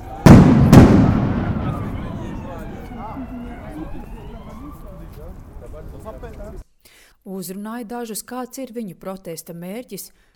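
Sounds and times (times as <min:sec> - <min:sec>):
stun grenades booming at a street protest: 0:00.0 - 0:03.2
speech: 0:03.2 - 0:10.3.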